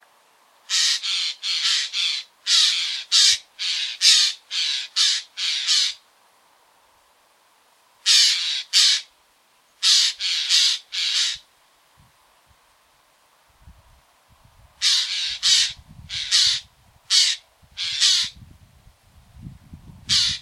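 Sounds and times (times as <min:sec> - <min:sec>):
Eurasian jay Garrulus glandarius calling in a garden: 0:00.7 - 0:06.0, 0:08.0 - 0:09.1, 0:09.8 - 0:11.4, 0:14.8 - 0:18.4, 0:20.1 - 0:20.4.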